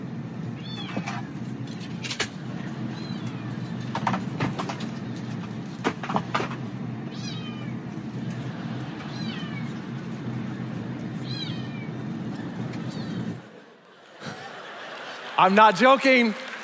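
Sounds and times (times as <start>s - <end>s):
loud steady low roar: 0.0s - 14.6s
cat meowing: 0.6s - 1.3s, 2.8s - 3.8s, 7.1s - 7.9s, 9.0s - 9.9s, 11.1s - 13.5s
laughter: 8.1s - 10.0s, 13.4s - 16.6s
speech: 15.4s - 16.4s.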